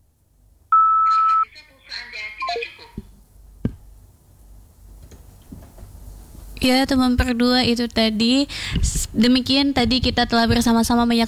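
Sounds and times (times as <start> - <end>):
operator message offering a collect call: 0.7 - 1.5
single steady telephone beep: 0.7 - 1.5
speech: 6.6 - 11.2.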